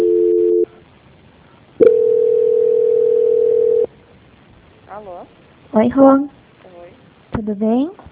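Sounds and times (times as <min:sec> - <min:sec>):
two-note telephone tone during a call transfer: 0:00.0 - 0:00.8, 0:01.8 - 0:03.9
speech: 0:05.8 - 0:06.4, 0:07.4 - 0:08.0.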